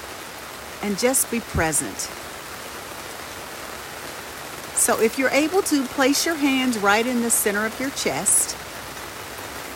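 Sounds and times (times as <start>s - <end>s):
rain falling outdoors: 0.0s - 9.7s
speech: 0.8s - 2.3s, 4.8s - 8.6s.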